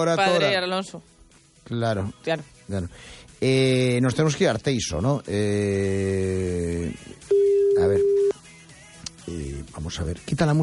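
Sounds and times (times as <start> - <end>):
speech: 0.0 - 8.1, 9.3 - 10.6
telephone ringback tone while a call is placed: 7.3 - 8.3.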